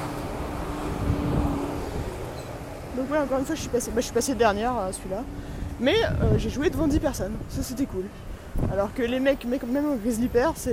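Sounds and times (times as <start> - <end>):
truck engine drone: 0.0 - 8.6
windy broadband roar: 0.0 - 10.7
speech: 3.0 - 10.7.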